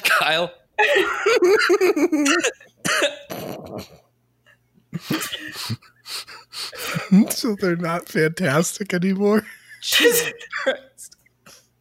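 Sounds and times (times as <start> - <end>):
speech: 0.2 - 4.0, 7.0 - 10.9
person in a harsh hacking coughing fit: 1.6 - 4.0, 5.0 - 5.8, 9.9 - 10.9.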